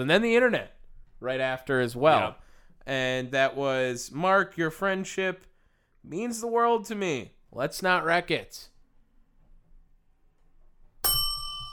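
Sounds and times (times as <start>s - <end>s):
speech: 0.0s - 8.7s
single bell struck sharply ringing: 11.0s - 11.7s.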